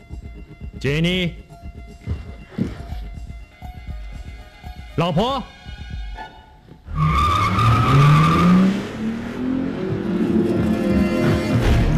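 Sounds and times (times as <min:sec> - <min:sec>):
speech: 0:00.8 - 0:01.4, 0:05.0 - 0:05.6
car tires screeching: 0:06.2 - 0:11.9
car engine revving while speeding away from a house: 0:06.9 - 0:11.9.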